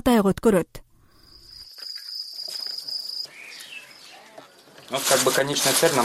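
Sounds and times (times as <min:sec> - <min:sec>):
speech: 0:00.0 - 0:00.9, 0:04.9 - 0:06.0
crickets chirping at a cricket farm in Kyrgyzstan: 0:01.0 - 0:05.3.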